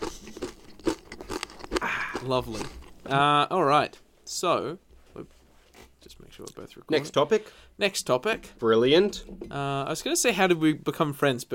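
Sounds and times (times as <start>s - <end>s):
chewing a crunchy snack: 0.0s - 3.1s
speech: 2.2s - 5.4s, 6.0s - 11.5s.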